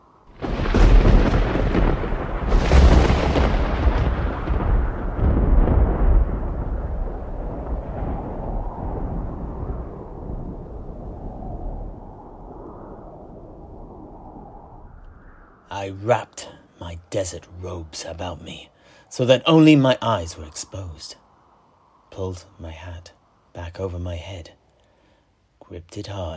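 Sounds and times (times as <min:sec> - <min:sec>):
thunder rumbling during a gale: 0:00.0 - 0:17.4
gale whipping up sand: 0:00.0 - 0:26.3
speech: 0:15.8 - 0:21.2, 0:22.1 - 0:24.6, 0:25.7 - 0:26.3.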